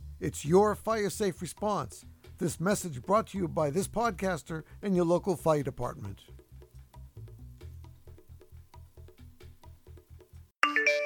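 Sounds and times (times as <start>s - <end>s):
speech: 0.2s - 6.4s
low rhythmic thumps: 0.8s - 10.4s
bright chiming phone text-message alert: 10.6s - 11.0s.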